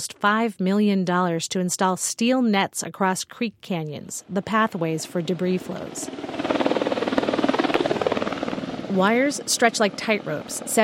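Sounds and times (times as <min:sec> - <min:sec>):
speech: 0:00.0 - 0:06.4, 0:09.0 - 0:10.8
helicopter rotor thumping while lowering a steel ring-mesh net over a creek canyon: 0:04.3 - 0:10.8.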